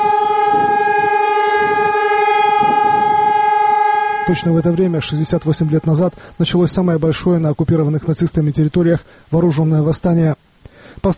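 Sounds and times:
city sirens wailing: 0.0 - 7.4
speech: 4.3 - 10.4.

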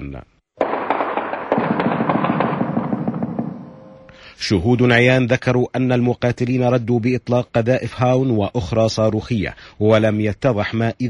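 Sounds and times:
speech: 0.1 - 0.4, 4.4 - 11.0
explosions from US tanks shelling positions on outskirts of Fallujah Iraq: 0.6 - 4.1.

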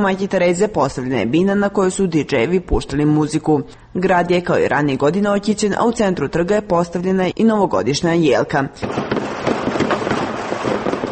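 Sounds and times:
speech: 0.0 - 9.6
fireworks and firecrackers exploding at a New Year's Eve celebration on a city square in Pristina: 8.8 - 11.1.

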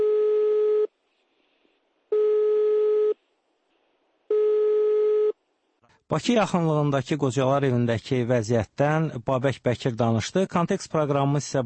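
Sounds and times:
telephone ringing tone of an unanswered call to a number in Russia's Kaliningrad region: 0.0 - 0.9, 2.1 - 3.2, 4.3 - 5.4
speech: 6.1 - 11.6.

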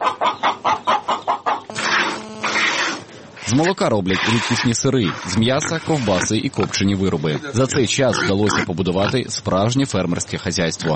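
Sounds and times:
chicken squawking call from the flock: 0.0 - 3.1
chickens clucking on a family farm near Kostiantynivka, Donetsk region, Ukraine: 0.0 - 9.3
speech: 3.5 - 10.9.

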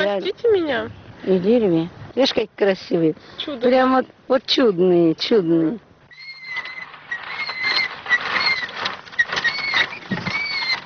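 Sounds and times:
speech: 0.1 - 5.9
child's unoiled tricycle squeaking and creaking: 6.1 - 10.8
rattling mechanical clatter of a child's tricycle: 6.2 - 10.8.

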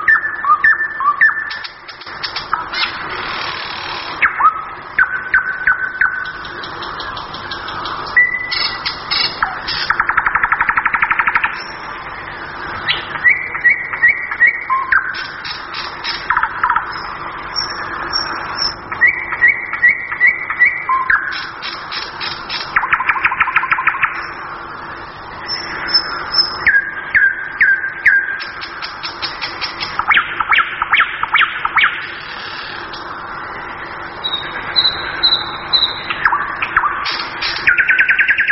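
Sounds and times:
nightingale singing: 0.0 - 3.1, 4.2 - 38.5.

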